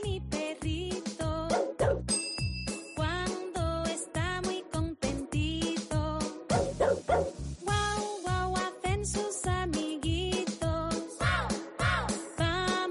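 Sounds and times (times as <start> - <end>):
bouncy novelty song with steady beat: 0.0 - 12.9
dogs barking in a novelty song: 1.5 - 2.0, 6.5 - 7.4
tinkling chimes: 2.1 - 3.0.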